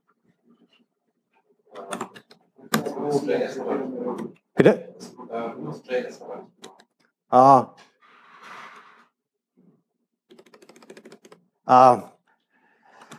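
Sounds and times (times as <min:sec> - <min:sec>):
light rapid computer keyboard taps: 0:01.8 - 0:02.9, 0:10.3 - 0:11.4, 0:13.0 - 0:13.1
speech: 0:03.1 - 0:06.6, 0:07.3 - 0:07.9, 0:11.7 - 0:12.1.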